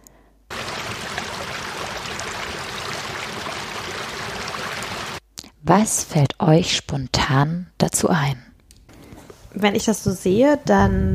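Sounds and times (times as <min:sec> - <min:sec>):
flowing river water: 0:00.5 - 0:05.2
speech: 0:05.7 - 0:08.5, 0:09.5 - 0:11.1.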